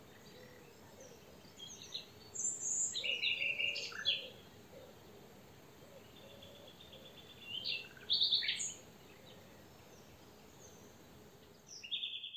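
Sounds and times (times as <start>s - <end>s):
steady background hiss: 0.0s - 12.3s
common nightingale Luscinia megarhynchos singing: 0.1s - 4.9s, 5.9s - 10.0s, 11.7s - 12.3s.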